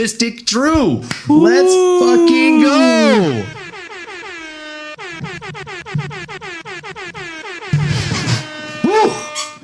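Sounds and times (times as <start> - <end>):
speech: 0.0 - 3.6
rising and falling whistle-like tone: 2.0 - 9.6
blaring air horn blasts: 2.1 - 9.6.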